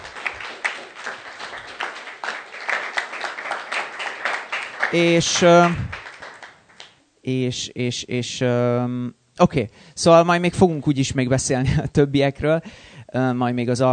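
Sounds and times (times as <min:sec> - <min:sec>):
audience clapping: 0:00.0 - 0:07.0
speech: 0:04.9 - 0:06.0, 0:07.2 - 0:13.9.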